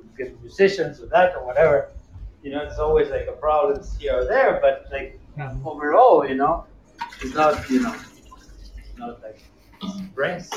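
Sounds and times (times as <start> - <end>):
speech: 0.2 - 8.1, 9.0 - 10.5
water pouring into a glass: 7.0 - 9.0.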